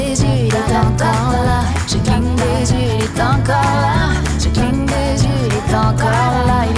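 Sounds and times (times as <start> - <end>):
chanting in a studio: 0.2 - 6.7.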